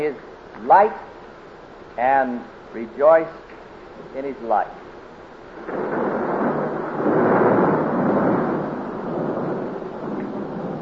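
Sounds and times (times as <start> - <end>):
speech: 0.0 - 1.1, 2.0 - 4.8, 5.6 - 5.9
thunder rumbling in a thunder and lightning storm: 5.4 - 10.8.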